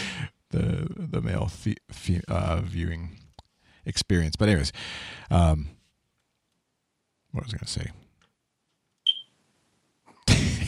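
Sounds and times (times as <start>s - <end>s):
speech: 0.5s - 3.2s, 3.8s - 5.8s, 7.3s - 8.0s
smoke alarm chirp: 9.0s - 9.3s.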